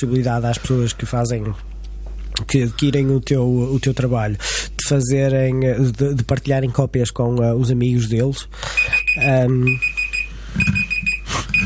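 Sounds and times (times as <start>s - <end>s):
speech: 0.0s - 1.8s, 2.4s - 10.9s
phone alarm ringtone beeping: 8.8s - 11.6s.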